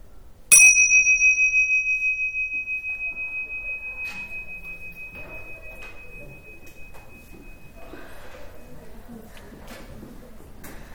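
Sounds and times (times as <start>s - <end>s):
meditation bell ringing: 0.5s - 9.1s.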